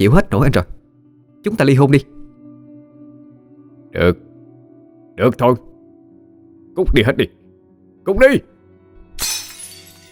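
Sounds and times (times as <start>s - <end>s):
speech: 0.0s - 0.8s, 1.4s - 2.2s, 3.9s - 4.3s, 5.2s - 5.7s, 6.8s - 7.4s, 8.0s - 8.5s, 9.2s - 9.4s
bowls, plates and pots smashed by a drunk man in a rage: 9.2s - 10.1s.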